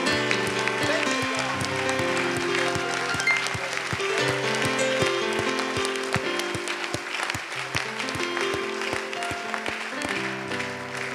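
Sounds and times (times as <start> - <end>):
large audience applauding: 0.0 - 11.1
sustained music playing: 0.0 - 11.1.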